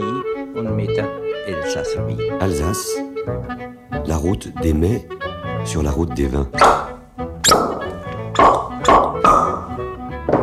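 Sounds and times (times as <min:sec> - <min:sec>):
speech: 0:00.6 - 0:06.9
wine bottle cork popping: 0:06.6 - 0:10.4.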